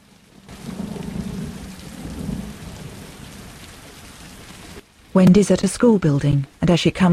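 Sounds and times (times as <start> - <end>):
rain beating against a window: 0.0 - 5.2
speech: 5.2 - 7.1.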